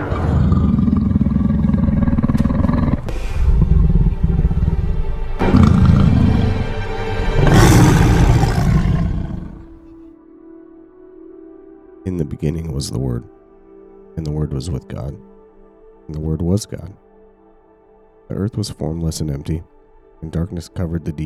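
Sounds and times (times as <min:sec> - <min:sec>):
lion growling low: 0:00.0 - 0:10.0
lion roaring: 0:00.0 - 0:10.0
speech: 0:12.3 - 0:13.4, 0:14.2 - 0:15.3, 0:16.1 - 0:17.1, 0:18.3 - 0:21.2.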